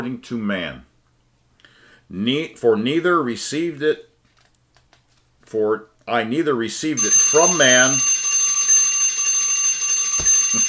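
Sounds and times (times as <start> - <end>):
speech: 0.0 - 0.9, 2.1 - 4.1, 5.5 - 8.2
alarm beeping as a time warning: 7.0 - 10.6.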